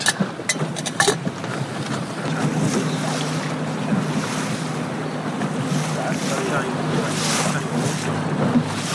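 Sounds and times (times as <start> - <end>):
low engine drone of small boats on open water: 0.0 - 8.9
waves washing: 0.0 - 8.9
wind buffeting the microphone: 0.0 - 8.9
faint voices: 1.9 - 8.8.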